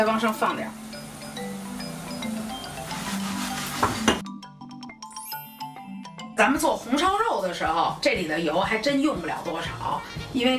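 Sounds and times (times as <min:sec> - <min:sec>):
speech: 0:00.0 - 0:00.9, 0:06.4 - 0:10.5
egg and carrot pancake sizzling in oil: 0:00.0 - 0:04.2
pan clinking and scraping: 0:02.7 - 0:04.2.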